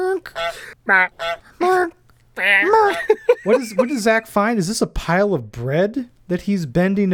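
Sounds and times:
goose honking: 0:00.2 - 0:02.9
speech: 0:00.2 - 0:07.1
laughter: 0:00.8 - 0:04.3.

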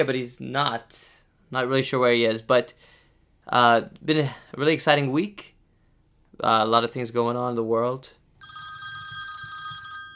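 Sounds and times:
speech: 0:00.0 - 0:02.9, 0:03.5 - 0:05.5, 0:06.4 - 0:08.6
telephone ringing with electronic trill: 0:08.4 - 0:10.1.

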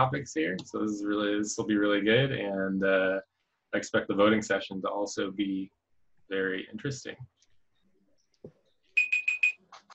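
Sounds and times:
speech: 0:00.0 - 0:07.3
digital timer alarm beeping: 0:09.0 - 0:09.7.

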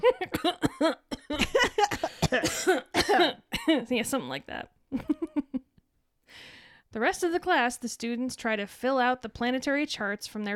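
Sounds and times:
forced coughing to hide a laugh: 0:00.0 - 0:03.8
speech: 0:03.8 - 0:05.1, 0:06.9 - 0:10.5
person laughing: 0:05.0 - 0:05.7.

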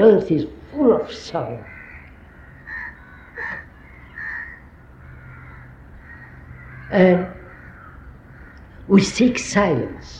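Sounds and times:
speech: 0:00.0 - 0:01.7, 0:06.9 - 0:07.4, 0:08.9 - 0:10.1
low hiss: 0:00.0 - 0:10.1
crow cawing: 0:01.6 - 0:08.9.

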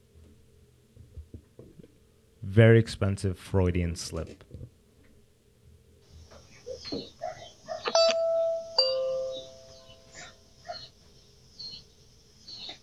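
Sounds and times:
speech: 0:02.6 - 0:04.5
doorbell two-note chime: 0:07.9 - 0:09.8.

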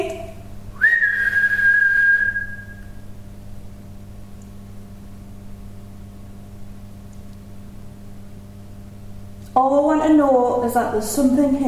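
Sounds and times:
person whistling to get a possible spirit to communicate: 0:00.8 - 0:03.0
speech: 0:09.6 - 0:11.6.

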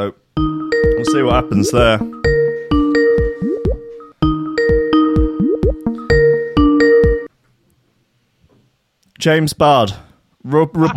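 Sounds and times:
speech: 0:00.0 - 0:00.2, 0:01.1 - 0:02.3, 0:09.2 - 0:10.9
Skype call ringtone: 0:00.4 - 0:07.3.

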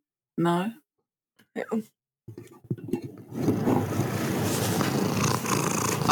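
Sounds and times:
cat purring: 0:03.4 - 0:06.0.

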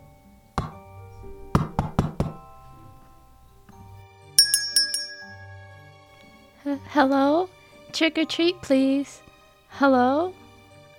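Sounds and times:
knocking on a door: 0:01.6 - 0:02.4
bright ringing chime-like tinkle: 0:04.4 - 0:06.1
speech: 0:06.7 - 0:10.4.

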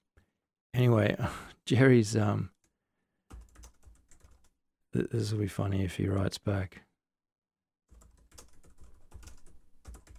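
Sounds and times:
speech: 0:00.8 - 0:02.5, 0:05.0 - 0:06.9
typing on a computer keyboard: 0:03.3 - 0:04.5, 0:07.9 - 0:10.1.

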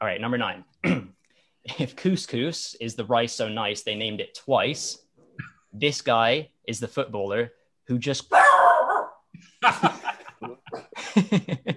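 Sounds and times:
speech: 0:00.0 - 0:05.0, 0:05.7 - 0:08.4, 0:09.6 - 0:10.0, 0:11.2 - 0:11.7
dog barking: 0:08.3 - 0:09.2
people chuckling with laughter: 0:09.6 - 0:11.7.

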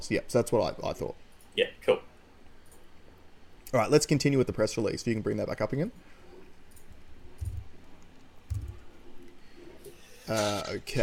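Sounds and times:
speech: 0:00.0 - 0:02.1, 0:03.7 - 0:06.2, 0:10.3 - 0:11.0
computer keyboard keys being hit: 0:07.4 - 0:07.8, 0:08.5 - 0:08.9.

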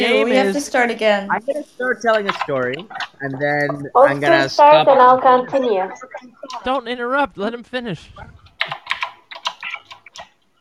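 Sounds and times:
speech: 0:00.0 - 0:08.4
typing on a computer keyboard: 0:08.5 - 0:10.4.

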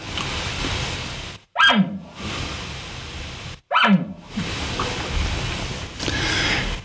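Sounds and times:
outdoor hiss: 0:00.0 - 0:06.8
elk nervous barks: 0:01.6 - 0:02.2, 0:03.7 - 0:04.3.

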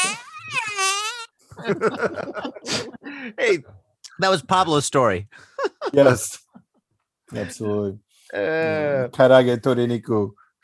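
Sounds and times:
loud buzzy mouth-made fart noise: 0:00.0 - 0:01.3
people laughing: 0:01.5 - 0:03.3, 0:05.5 - 0:06.2
speech: 0:01.6 - 0:06.4, 0:07.3 - 0:10.4.

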